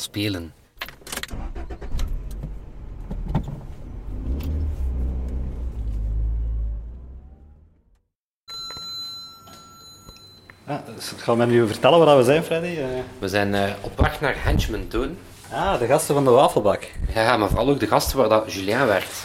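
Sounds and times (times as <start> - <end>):
speech: 0.0 - 0.6, 10.7 - 19.2
car starting with clunks and rattles, engine rumbling and revving as it drives off: 1.3 - 8.0.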